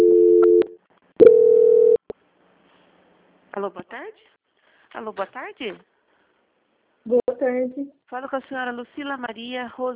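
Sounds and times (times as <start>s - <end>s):
telephone line tones during a bank call transfer: 0.0s - 2.0s
speech: 3.6s - 4.4s, 5.0s - 5.9s, 7.0s - 9.9s.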